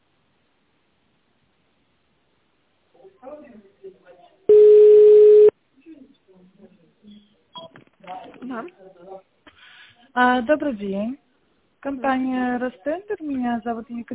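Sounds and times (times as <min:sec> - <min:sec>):
speech: 0:03.0 - 0:04.4, 0:08.2 - 0:09.3, 0:10.1 - 0:11.2, 0:11.8 - 0:14.1
telephone tone from dialing in tone mode on a phone line: 0:04.5 - 0:05.5.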